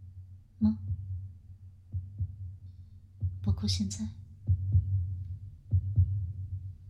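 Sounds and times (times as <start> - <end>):
speech: 0.6 - 0.8, 3.7 - 4.2
drum-like heartbeat thumping in paired beats: 0.7 - 2.6, 3.2 - 6.8.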